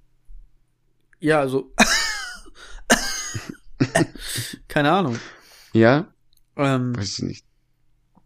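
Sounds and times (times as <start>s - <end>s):
speech: 1.2s - 2.0s, 3.9s - 7.5s
person imitating a dog coughing: 1.8s - 4.2s
laughter: 1.8s - 5.4s.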